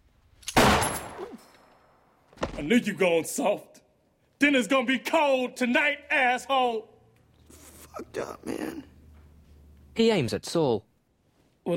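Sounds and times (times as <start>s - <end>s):
gunshot fired from a trapdoor: 0.6s - 1.4s
speech: 2.6s - 3.8s, 4.4s - 6.9s, 8.0s - 8.9s, 10.0s - 10.9s.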